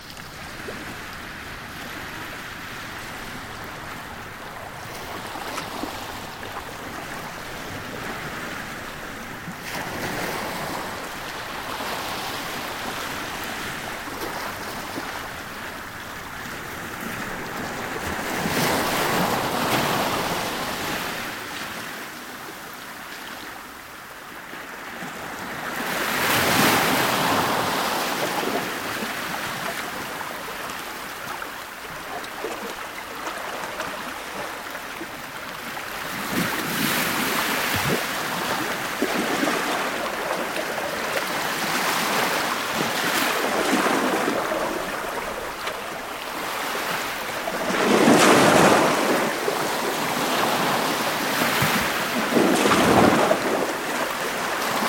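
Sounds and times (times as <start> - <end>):
ocean waves on harbour shoreline: 0.0 - 54.8.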